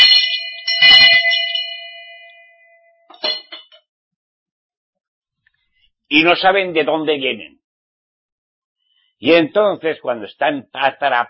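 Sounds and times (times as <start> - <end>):
bells clanging: 0.0 - 3.8
speech: 6.1 - 7.6, 9.2 - 11.2.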